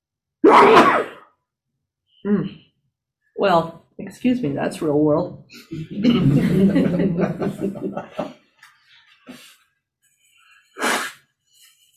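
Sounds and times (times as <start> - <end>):
person sneezing: 0.4 - 1.3, 10.8 - 11.2
speech: 0.5 - 1.1, 2.2 - 2.7, 3.4 - 8.4
laughter: 5.7 - 8.5.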